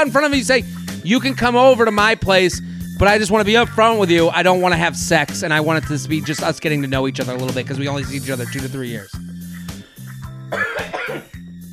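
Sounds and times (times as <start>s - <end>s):
speech: 0.0s - 9.3s
person coughing harshly with throat clearing: 10.5s - 11.4s.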